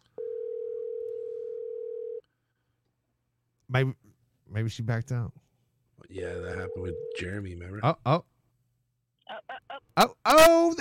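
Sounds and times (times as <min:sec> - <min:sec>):
loud electronic ringback tone from a phone call: 0:00.2 - 0:02.2, 0:06.4 - 0:07.3
speech: 0:03.7 - 0:05.4, 0:06.0 - 0:08.3, 0:10.0 - 0:10.7.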